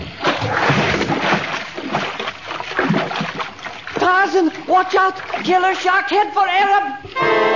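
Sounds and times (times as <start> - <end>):
man diving into water by a wharf: 0.0 - 5.6
loud churning water splashing: 0.0 - 7.2
speech: 4.3 - 7.4.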